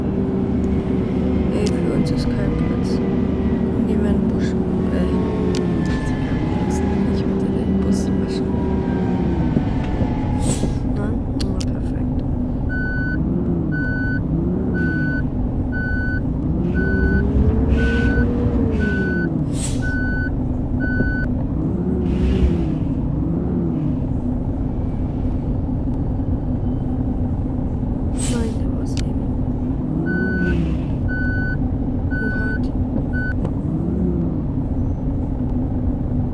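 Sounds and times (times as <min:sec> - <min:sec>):
large bus engine droning in a driving simulator game: 0:00.0 - 0:36.3
evenly spaced reversing beeps: 0:12.7 - 0:14.2, 0:14.8 - 0:15.2, 0:15.8 - 0:21.3, 0:30.1 - 0:33.4.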